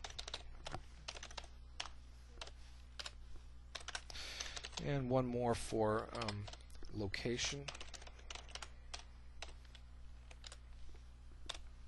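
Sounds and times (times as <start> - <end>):
typing JavaScript code on a computer keyboard: 0.0 - 4.9, 6.1 - 6.6, 7.5 - 10.6, 11.4 - 11.7
speech: 4.8 - 7.8.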